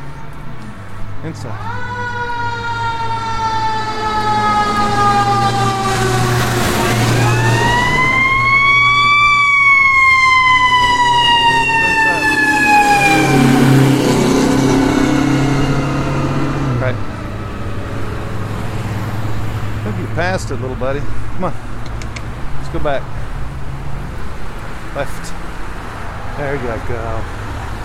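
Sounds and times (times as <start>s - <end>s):
traffic: 0.0s - 27.8s
speech: 1.2s - 1.8s, 20.5s - 21.7s, 22.7s - 23.2s, 25.0s - 25.4s, 26.4s - 27.4s
fire truck siren wailing: 1.5s - 20.0s.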